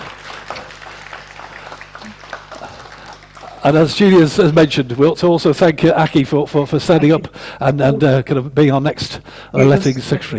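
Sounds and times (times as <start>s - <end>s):
applause from a gathered group at a building committee meeting: 0.0s - 4.9s
speech: 3.6s - 10.3s.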